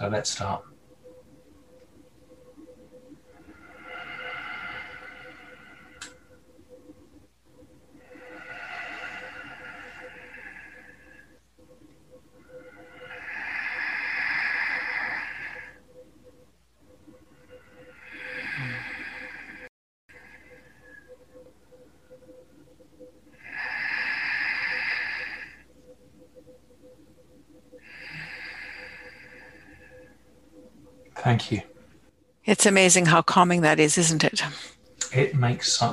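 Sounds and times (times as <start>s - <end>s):
speech: 0.0s - 0.8s, 31.5s - 31.7s, 32.5s - 35.9s
faint hum: 0.0s - 35.9s
slow deep breathing in and out: 2.4s - 31.0s.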